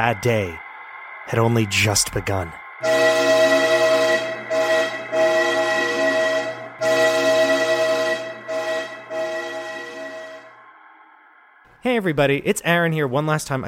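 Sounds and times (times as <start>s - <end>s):
speech: 0.0s - 0.6s, 1.3s - 3.3s, 11.8s - 13.6s
train whistle blowing: 2.8s - 10.6s.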